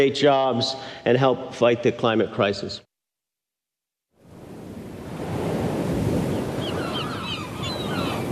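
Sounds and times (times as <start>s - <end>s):
speech: 0.0s - 2.9s
gentle waves lapping in a shallow bay of Long Island Sound: 4.2s - 8.3s
faint high bird chirps: 6.3s - 8.3s.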